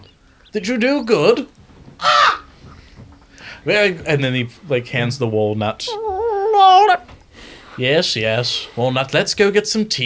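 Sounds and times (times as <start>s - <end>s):
speech: 0.5s - 2.2s, 3.6s - 7.0s, 7.8s - 10.0s
crow cawing: 2.0s - 2.5s, 5.9s - 7.0s.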